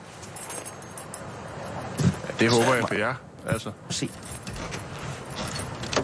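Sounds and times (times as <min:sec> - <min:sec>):
keys jangling and clinking in a door lock: 0:00.2 - 0:02.3, 0:04.0 - 0:06.0
speech: 0:02.4 - 0:04.4.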